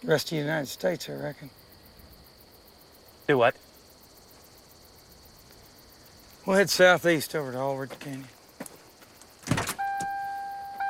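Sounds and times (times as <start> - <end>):
speech: 0.0 - 1.6, 3.3 - 3.7, 6.4 - 8.4
car door thudding shut as a man gets into his car: 9.4 - 10.2
steady electronic car warning tone: 9.8 - 10.8.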